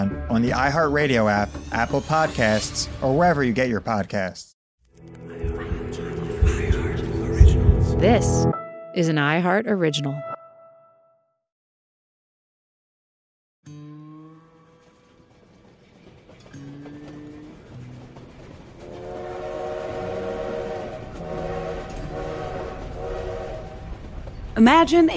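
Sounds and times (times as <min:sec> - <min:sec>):
speech: 0:00.3 - 0:05.2, 0:08.0 - 0:10.3, 0:24.6 - 0:25.1
steam passenger train rumbling along the rails: 0:05.4 - 0:08.5, 0:14.8 - 0:25.1
steam train sustained whistle tones: 0:18.8 - 0:24.0.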